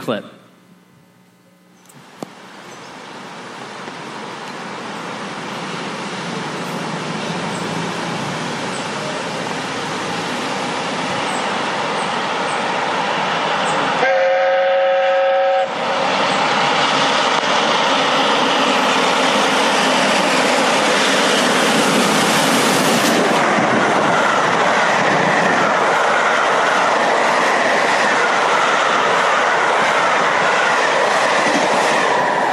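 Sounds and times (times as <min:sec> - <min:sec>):
speech: 0:00.0 - 0:00.4
steam locomotive thundering down the rails: 0:02.0 - 0:32.5
steam locomotive whistle blast: 0:14.0 - 0:15.8.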